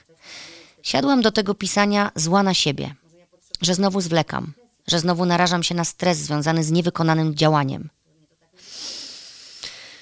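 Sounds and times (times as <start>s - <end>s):
speech: 0.1s - 3.0s, 3.6s - 8.0s
deep breath in and out: 8.6s - 10.0s.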